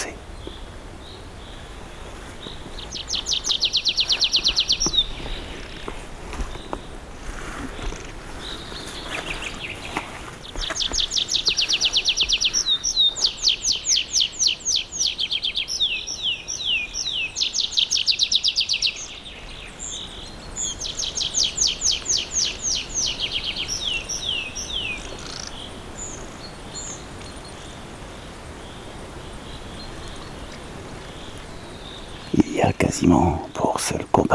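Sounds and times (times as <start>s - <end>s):
birds singing in a fir forest in Poľana, Slovakia: 0.0s - 34.3s.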